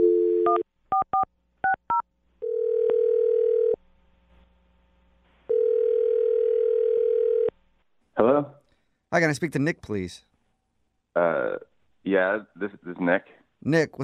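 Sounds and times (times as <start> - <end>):
loud steady phone tone: 0.0 - 0.6, 1.9 - 3.8, 5.5 - 7.5
speech: 9.1 - 10.3, 11.2 - 14.0.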